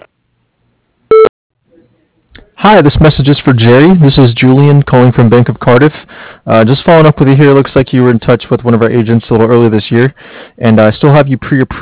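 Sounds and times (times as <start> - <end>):
construction company voicemail recording beep: 1.1 - 1.3
speech: 2.6 - 11.8.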